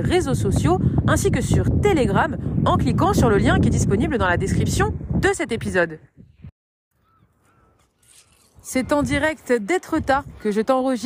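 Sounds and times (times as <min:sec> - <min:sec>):
speech: 0:00.0 - 0:06.1, 0:08.7 - 0:11.0
seagulls calling: 0:06.9 - 0:10.0.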